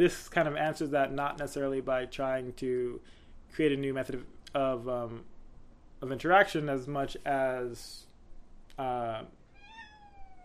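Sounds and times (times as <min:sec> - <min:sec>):
speech: 0:00.0 - 0:05.3, 0:06.0 - 0:08.1, 0:08.8 - 0:09.4
faint room noise: 0:00.0 - 0:10.4
cat meowing: 0:09.5 - 0:10.4.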